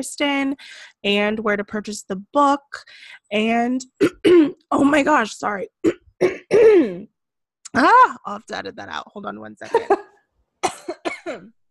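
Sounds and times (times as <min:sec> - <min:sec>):
speech: 0:00.0 - 0:07.1, 0:07.7 - 0:10.0, 0:11.3 - 0:11.6
dry coughs: 0:04.0 - 0:04.6, 0:05.8 - 0:07.1, 0:10.6 - 0:11.6.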